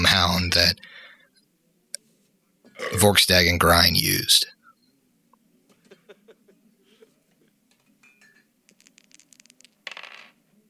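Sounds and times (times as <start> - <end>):
speech: 0.2 - 0.9, 2.8 - 4.6
dice clattering on a hard tabletop: 8.7 - 10.5.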